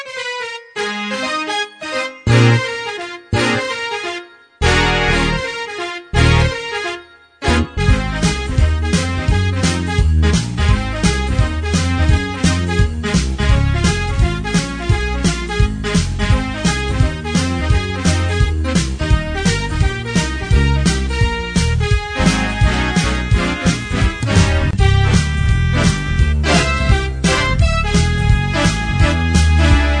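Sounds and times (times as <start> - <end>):
big band music by a one man band: 0.8 - 29.9.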